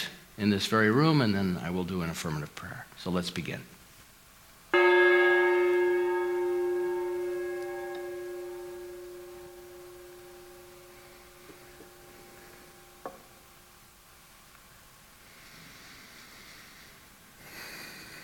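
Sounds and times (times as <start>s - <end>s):
speech: 0.4s - 3.8s
single gong struck and ringing: 4.8s - 13.8s.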